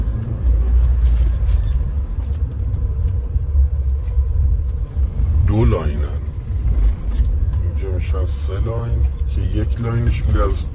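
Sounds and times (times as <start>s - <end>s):
idling car engines of cars queued at a gas station: 0.0s - 10.7s
speech: 5.7s - 6.1s, 8.3s - 10.7s.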